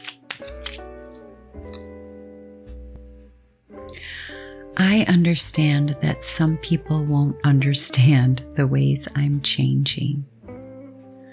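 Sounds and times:
deck of cards shuffled to pick an affirmation: 0.0 - 1.8
soft sustained music: 0.0 - 11.3
speech: 4.8 - 10.3.

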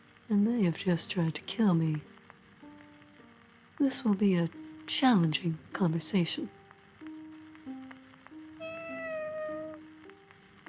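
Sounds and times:
speech: 0.3 - 2.1, 3.8 - 6.6
cat meowing: 8.6 - 9.9.

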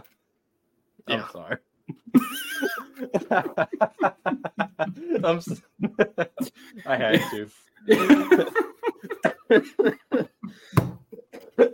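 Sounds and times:
speech: 1.0 - 2.4, 3.0 - 11.0
laughter: 1.9 - 11.7
person coughing: 7.1 - 8.2, 11.5 - 11.7.

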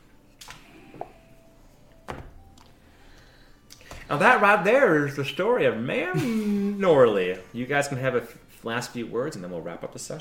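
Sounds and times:
door shutting with a thud: 2.1 - 2.4
speech: 4.1 - 10.1.

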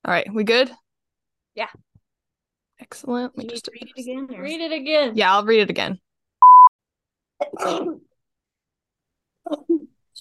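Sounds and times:
speech: 0.1 - 0.8, 1.6 - 1.9, 2.8 - 6.0, 7.4 - 8.0, 9.5 - 9.9
short electronic beep: 6.4 - 6.7.

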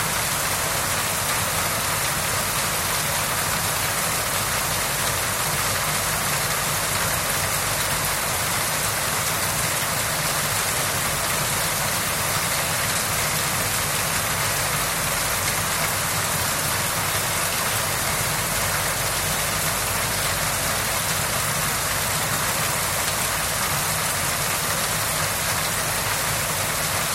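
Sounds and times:
rain on village hut roofs: 0.0 - 27.1.

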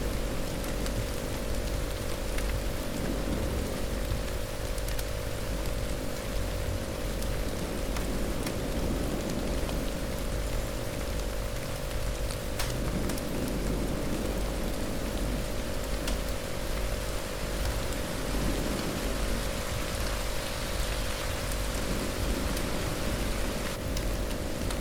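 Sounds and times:
low hum: 0.0 - 24.8
steady dense rain: 0.0 - 24.8.

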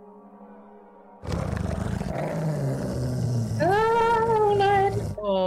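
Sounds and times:
several wolves growling and snarling: 1.2 - 5.3.

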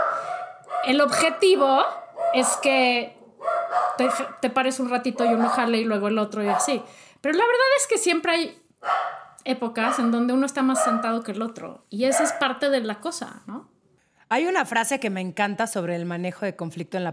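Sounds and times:
dogs barking: 0.0 - 6.9, 8.8 - 11.2, 12.0 - 12.6
speech: 0.8 - 13.7, 14.3 - 17.1.

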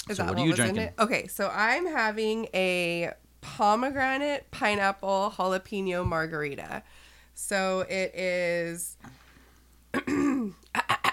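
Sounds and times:
speech: 0.1 - 9.2
person clearing throat: 9.9 - 11.1.

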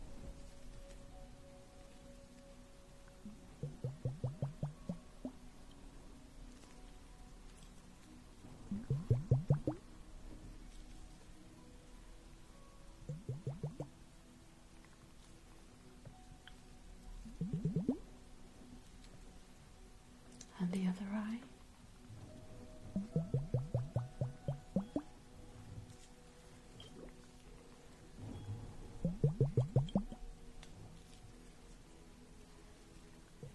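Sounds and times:
quiet low hum: 0.0 - 33.5
soft wet pulses of facial spa treatment drops: 3.2 - 5.4, 8.6 - 9.9, 13.0 - 14.0, 17.2 - 18.1, 22.9 - 25.1, 28.9 - 30.3, 33.0 - 33.5.

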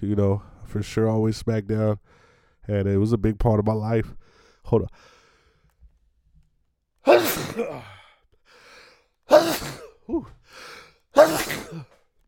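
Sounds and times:
speech: 0.0 - 5.1, 7.6 - 7.9, 11.2 - 11.9
person sneezing: 7.0 - 8.1, 9.3 - 10.4, 11.1 - 12.0.

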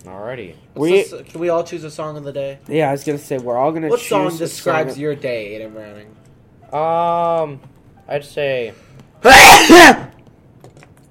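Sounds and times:
speech: 0.0 - 10.1
loud sneeze: 9.2 - 10.1.

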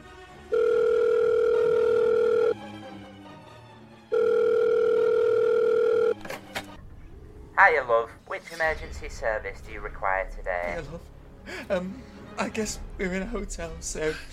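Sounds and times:
telephone dial tone: 0.5 - 2.6, 4.1 - 6.2
speech: 7.6 - 14.3.

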